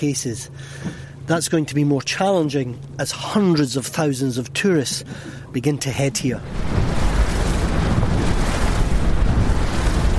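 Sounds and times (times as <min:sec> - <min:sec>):
speech: 0:00.0 - 0:07.1
flotilla of fast boats engine rumble arriving at islands: 0:00.0 - 0:10.1
rushing wind: 0:06.0 - 0:10.1.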